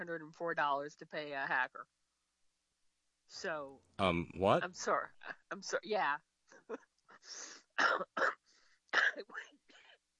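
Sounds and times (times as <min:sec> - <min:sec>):
speech: 0:00.0 - 0:02.0, 0:03.3 - 0:09.6
person coughing: 0:07.8 - 0:08.4, 0:09.0 - 0:09.4.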